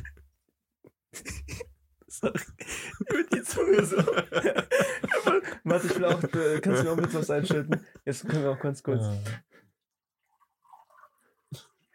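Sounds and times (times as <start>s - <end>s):
laughter: 1.2s - 8.6s
speech: 2.2s - 9.5s
water poured into a glass: 9.8s - 11.9s.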